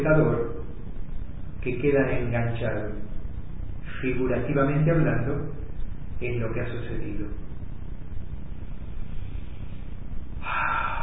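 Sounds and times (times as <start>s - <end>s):
speech: 0.0s - 0.6s, 1.6s - 3.2s, 3.9s - 5.6s, 6.2s - 7.4s
long deep breath: 9.0s - 11.0s.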